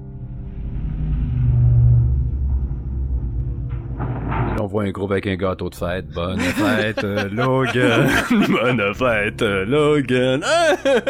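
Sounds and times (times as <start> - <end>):
heavy metal door grinding open in a warehouse: 0.6 - 4.6
speech: 4.7 - 11.0
laughter: 6.3 - 9.6, 10.2 - 11.0.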